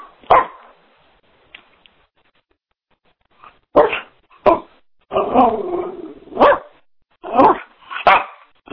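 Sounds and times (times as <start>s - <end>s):
dog barking: 0.3s - 0.7s, 3.7s - 4.7s, 6.3s - 8.5s.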